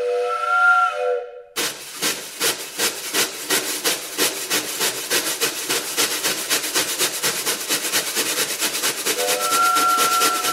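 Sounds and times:
train whistle played by drummers behind a silent-film movie screen: 0.0s - 1.6s, 9.2s - 10.5s
chugging wooden clacks from woodblocks: 1.6s - 10.5s.

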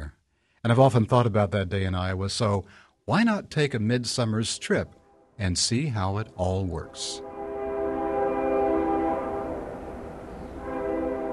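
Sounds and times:
speech: 0.6s - 7.3s
freight train rumbling past: 6.0s - 11.3s
freight train horn blaring: 6.9s - 11.3s.

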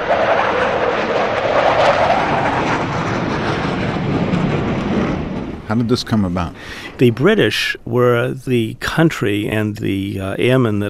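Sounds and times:
several aircraft engines roaring overhead in formation: 0.0s - 8.0s
speech: 5.7s - 10.8s.

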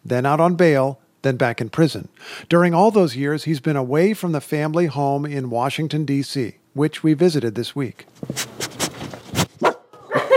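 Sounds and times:
speech: 0.1s - 8.6s
pet dog barking at a family home: 9.6s - 10.3s.

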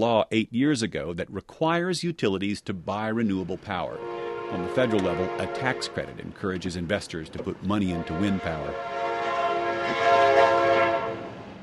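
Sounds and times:
speech: 0.0s - 9.2s
faint passing train rumble: 2.9s - 11.6s
passing train horn in Roscoe West Texas: 3.8s - 6.3s, 7.8s - 11.6s.

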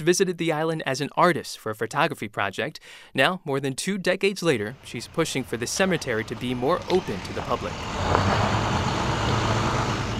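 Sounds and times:
speech: 0.0s - 8.6s
refrigerated truck engine rumble arriving at a cemetery gate: 4.7s - 10.1s.

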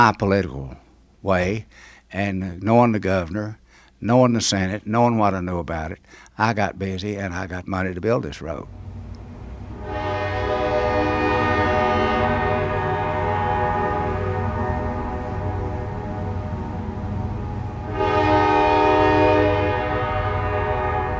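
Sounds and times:
speech: 0.0s - 8.8s
rolling coal train rail cars rumbling and rattling: 8.7s - 21.1s
coal train whistle blowing: 9.6s - 21.1s.

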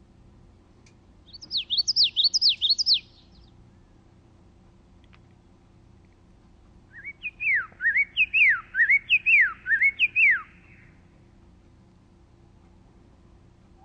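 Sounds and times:
Common Yellowthroat singing: 1.2s - 4.0s, 6.9s - 11.0s.

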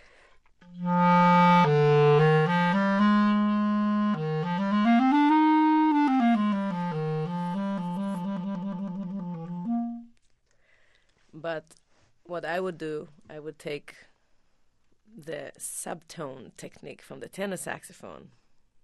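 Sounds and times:
clarinet played in its low register in a classical style: 0.6s - 10.2s
speech: 12.4s - 14.1s, 15.2s - 18.4s.

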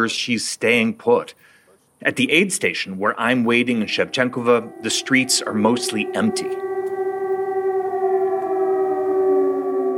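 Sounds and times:
speech: 0.0s - 6.7s
air raid siren wailing: 3.2s - 9.9s.

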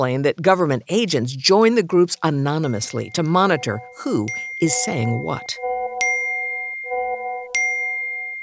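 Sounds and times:
speech: 0.0s - 5.7s
WhatsApp chat group notification dings: 2.6s - 8.4s.

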